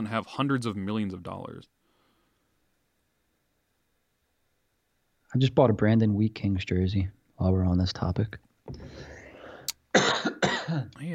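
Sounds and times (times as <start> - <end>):
speech: 0.0 - 1.8, 5.3 - 9.1, 10.7 - 11.1
short throaty vocal sound: 8.7 - 9.8
person coughing harshly: 8.8 - 10.9.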